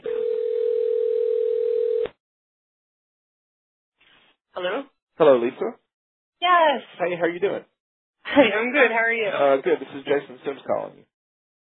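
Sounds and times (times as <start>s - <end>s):
telephone dial tone before a call: 0.0s - 2.2s
speech: 4.6s - 5.8s, 6.4s - 11.1s.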